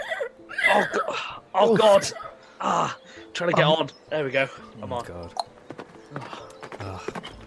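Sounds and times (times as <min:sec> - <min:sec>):
speech: 0:00.7 - 0:05.5
horse hooves clip-clopping pulling a cart: 0:05.0 - 0:07.4.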